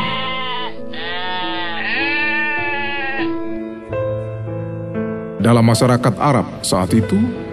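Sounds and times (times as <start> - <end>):
flock of goats bleating: 0.0 - 3.4
speech: 5.4 - 7.4.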